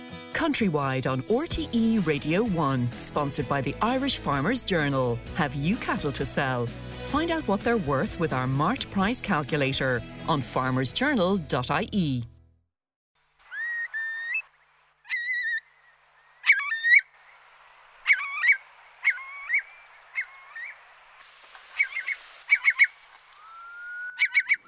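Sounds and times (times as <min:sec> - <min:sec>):
speech: 0:00.4 - 0:12.3
curlew calling: 0:13.4 - 0:24.6.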